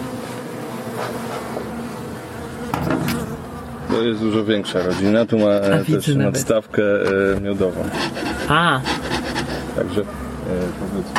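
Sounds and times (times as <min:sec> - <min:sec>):
many honeybees buzzing around an open hive: 0:00.0 - 0:11.1
speech: 0:01.0 - 0:01.8, 0:04.0 - 0:09.1, 0:09.8 - 0:11.1.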